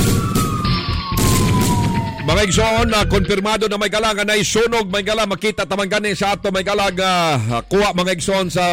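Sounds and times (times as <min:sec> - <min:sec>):
fire alarm siren wailing: 0:00.0 - 0:05.4
speech: 0:02.4 - 0:08.7.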